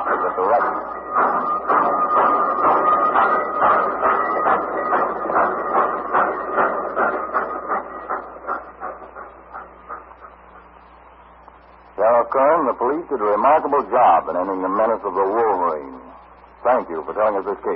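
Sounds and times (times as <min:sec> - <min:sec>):
train wheels clacking over the rails: 0:00.0 - 0:10.7
train rumbling past: 0:00.0 - 0:17.7
speech: 0:13.0 - 0:17.7.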